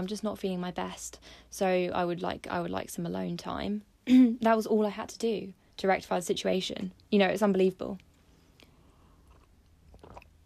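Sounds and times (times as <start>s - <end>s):
speech: 0.0s - 8.1s
person sipping a cup of tea: 8.4s - 10.4s
wet swallowing and lip sounds: 8.5s - 10.4s.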